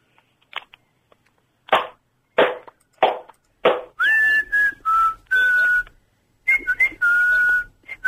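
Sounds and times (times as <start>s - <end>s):
person whistling: 4.0s - 8.0s.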